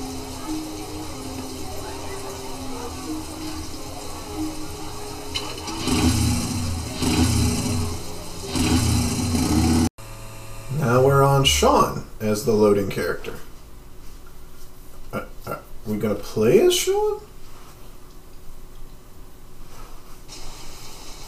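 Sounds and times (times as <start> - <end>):
motorcycle engine idling and revving: 4.4 - 11.5
speech: 11.5 - 13.5, 15.9 - 17.3.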